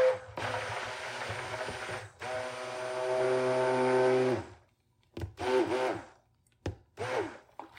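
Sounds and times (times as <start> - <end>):
electric mixer whirring through flan batter and milk in a high-sided bowl: 0.0 - 4.6, 5.4 - 6.1, 7.0 - 7.4.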